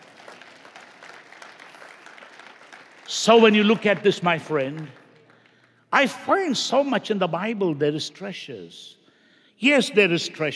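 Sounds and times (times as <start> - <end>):
audience clapping as a clap offering: 0.0 - 6.5
speech: 3.1 - 5.0, 5.9 - 9.0, 9.6 - 10.5.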